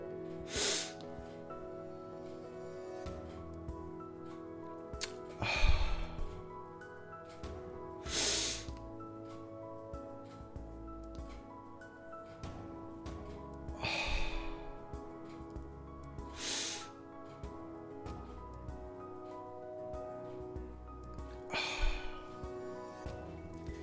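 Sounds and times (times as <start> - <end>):
quiet sustained musical backdrop: 0.0 - 23.8
slow deliberate breaths in a controlled breathing exercise: 0.4 - 3.3, 5.1 - 6.6, 8.0 - 9.4, 13.6 - 15.5, 16.2 - 17.0, 21.2 - 23.8.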